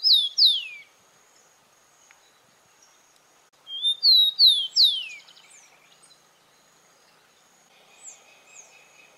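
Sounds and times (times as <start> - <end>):
rufous-collared sparrow Zonotrichia capensis singing sweet slurred whistles: 0.0 - 0.9, 3.7 - 5.9.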